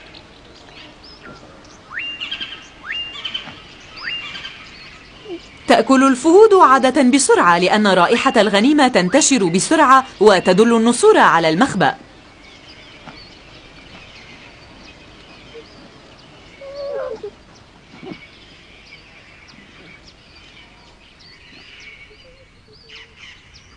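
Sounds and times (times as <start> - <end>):
pair of kites calling around a young cheetah at its prey: 0.0 - 23.2
outdoor hiss: 0.0 - 23.7
speech: 5.7 - 12.0.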